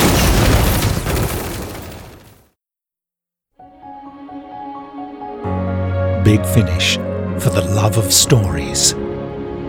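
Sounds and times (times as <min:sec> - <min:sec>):
weapons fire in an audio drama combat scene: 0:00.0 - 0:02.4
explosions in an audio drama combat scene: 0:00.0 - 0:02.5
speech: 0:06.2 - 0:09.2.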